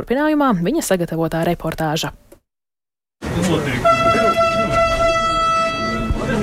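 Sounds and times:
speech: 0:00.0 - 0:02.2, 0:03.4 - 0:04.4
new electric train horn blaring: 0:03.6 - 0:06.4.

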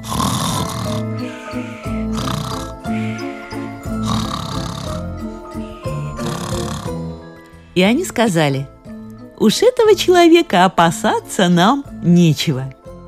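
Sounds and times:
loud rasping snoring: 0:00.0 - 0:07.3
speech: 0:07.8 - 0:08.7, 0:09.4 - 0:12.8.

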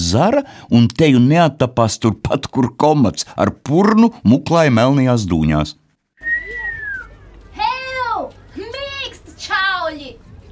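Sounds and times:
speech: 0:00.1 - 0:05.8
person whistling falling and swooping calls: 0:06.2 - 0:07.1.

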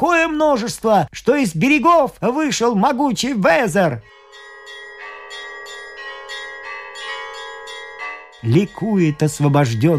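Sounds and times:
speech: 0:00.0 - 0:04.4, 0:08.4 - 0:09.9
cathedral bells ringing together in a joyful peal: 0:04.0 - 0:09.9.

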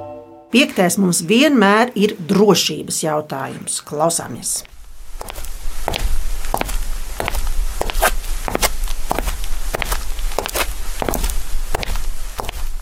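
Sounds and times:
speech: 0:00.5 - 0:04.7
human footsteps walking at an even pace: 0:04.3 - 0:12.7.

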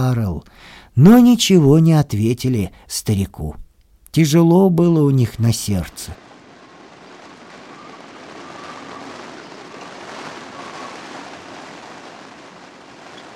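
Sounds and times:
speech: 0:00.0 - 0:03.6, 0:04.2 - 0:06.2
dense roar of a storm at sea: 0:05.0 - 0:13.3
wind howling in a chimney: 0:06.1 - 0:13.3.

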